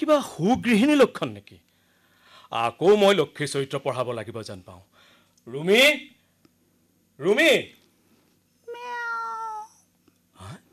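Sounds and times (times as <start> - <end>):
speech: 0.0 - 1.7, 2.5 - 6.2, 7.2 - 7.8
domestic cat meowing: 8.7 - 9.8.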